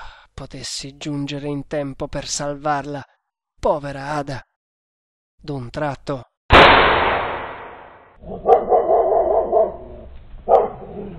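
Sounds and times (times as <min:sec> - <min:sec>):
speech: 0:00.4 - 0:04.5, 0:05.4 - 0:07.0, 0:08.2 - 0:08.5
sharp dry detonation: 0:06.5 - 0:08.1
dog barking mournfully on a stormy night: 0:08.2 - 0:11.1.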